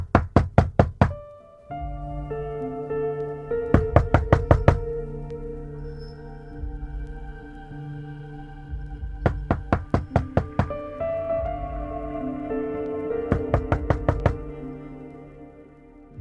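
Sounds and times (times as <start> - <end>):
loud knocking on a door: 0.0 - 1.2, 3.8 - 4.8, 9.2 - 10.8, 13.3 - 14.4
steady tonal musical drone humming: 1.2 - 16.1.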